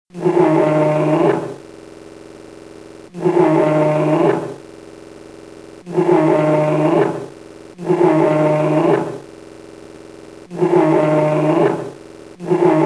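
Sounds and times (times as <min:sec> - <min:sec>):
low hum: 0:00.1 - 0:12.8
captive polar bear giving groaning roars at a zoo: 0:00.2 - 0:01.5, 0:03.2 - 0:04.5, 0:06.0 - 0:07.2, 0:07.9 - 0:09.2, 0:10.6 - 0:11.9, 0:12.5 - 0:12.8.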